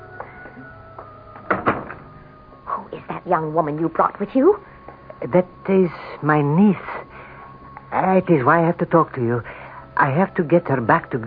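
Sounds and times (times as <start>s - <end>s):
faint steady hum: 0.0s - 11.2s
door handle or latch clunks as a door opens: 1.4s - 2.1s
speech: 3.2s - 7.0s, 7.9s - 11.2s.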